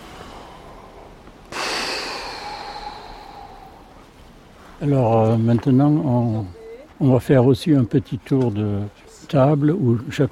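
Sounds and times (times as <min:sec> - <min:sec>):
group taking a collective intake of breath: 0:00.0 - 0:04.1
speech: 0:04.8 - 0:10.2.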